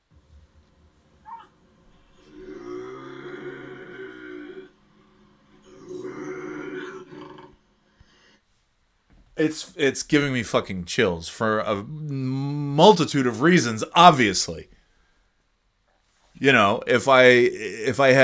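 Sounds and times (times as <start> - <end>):
bobcat growling and grumbling: 2.1 - 4.8, 5.6 - 7.7
speech: 9.4 - 14.8, 16.4 - 18.2.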